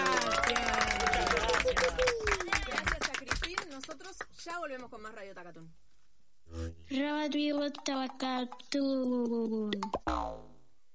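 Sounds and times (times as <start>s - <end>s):
audience applauding: 0.0s - 4.0s
speech: 4.6s - 5.9s, 6.5s - 10.5s.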